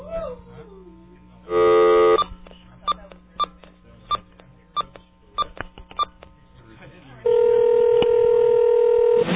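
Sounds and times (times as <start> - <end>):
telephone dialing tones: 1.5 - 2.3, 7.3 - 9.2.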